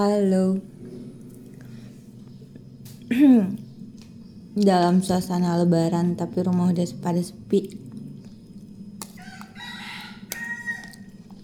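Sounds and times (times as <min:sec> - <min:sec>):
speech: 0:00.0 - 0:00.8, 0:03.1 - 0:03.6, 0:04.6 - 0:07.8
steady low hum: 0:00.0 - 0:11.4
rooster crowing outdoors: 0:09.1 - 0:11.3.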